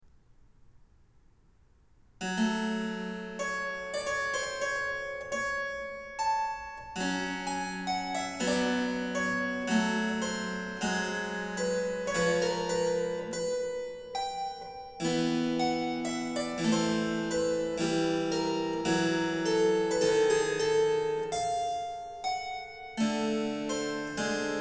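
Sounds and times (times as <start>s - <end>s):
harpsichord: 2.4s - 24.5s.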